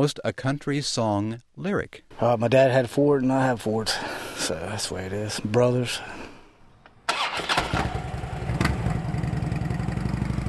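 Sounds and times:
speech: 0.0 - 6.2
motorcycle engine cranking, revving and idling: 7.8 - 10.4.

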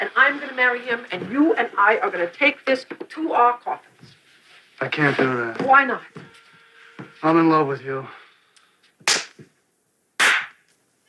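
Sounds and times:
speech: 0.6 - 3.9, 4.8 - 6.2, 7.2 - 8.2
sharp loud slaps across the face: 9.0 - 9.5, 10.2 - 10.7.

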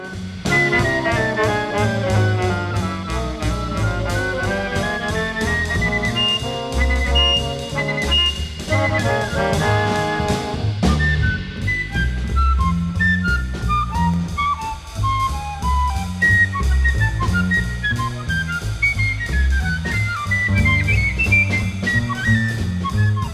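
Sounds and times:
full band with bass and drums: 0.0 - 23.3
piccolo played like a South African penny whistle: 0.0 - 23.3.

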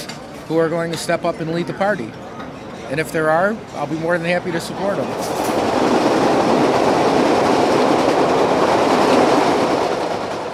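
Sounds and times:
speech: 0.5 - 2.2, 2.9 - 5.9
Chicago L elevated commuter train clattering over rails: 2.4 - 10.5.

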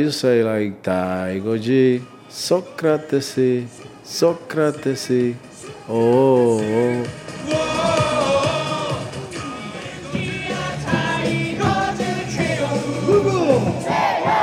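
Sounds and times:
speech: 0.0 - 7.6
large crowd at a South Korean baseball stadium chanting a player's cheer song: 7.4 - 14.4.

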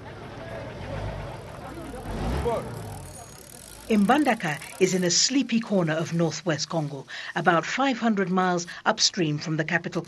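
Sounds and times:
boat engines humming at river port: 0.0 - 7.4
indistinct voices murmuring: 0.0 - 10.0
speech: 3.9 - 10.0.

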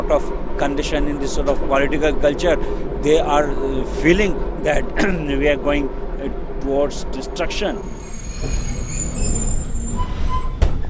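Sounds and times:
train arriving at station rumbling: 0.0 - 10.8
speech: 0.1 - 9.5
high metallic train wheel squeals: 7.7 - 10.8.

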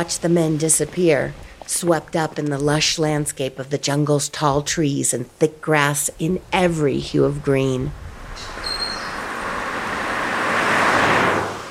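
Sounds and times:
speech: 0.0 - 8.6
highway traffic with racing vehicles and trucks: 6.4 - 11.6
vehicle passing close by on a highway: 8.0 - 11.6.

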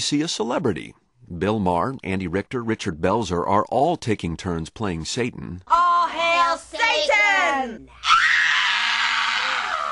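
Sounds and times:
speech: 0.0 - 8.2
woman screaming shrilly in a theatrical stage performance: 7.9 - 9.9.

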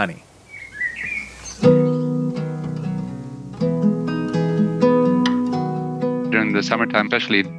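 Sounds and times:
speech: 0.0 - 0.3, 1.6 - 2.1, 6.3 - 7.5
birds chirping and tweeting in a birch and pine forest: 0.0 - 7.5
warm instrumental music: 1.6 - 7.5.

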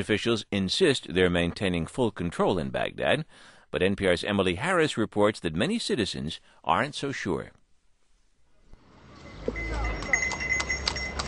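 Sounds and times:
speech: 0.0 - 7.6
rumble of traffic: 8.5 - 11.2
horse-drawn cart hooves clip-clopping on a hard road: 9.2 - 11.2.

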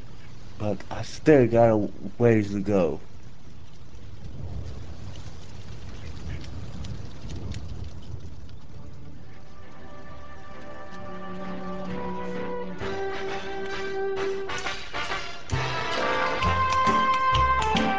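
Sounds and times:
artificial rain pouring on a stage: 0.0 - 17.9
speech: 0.6 - 3.1
faint sustained musical tone: 9.1 - 17.9.

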